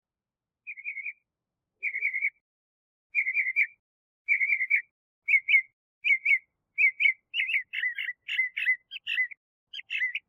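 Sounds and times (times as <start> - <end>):
Northern mockingbird singing warbled phrase: 0.7 - 1.2, 1.8 - 2.4, 3.1 - 10.2.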